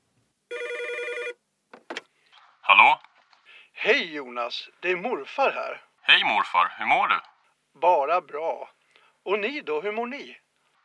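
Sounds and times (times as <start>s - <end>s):
telephone ringing with bright electronic ring: 0.5s - 1.4s
speech: 3.9s - 10.4s.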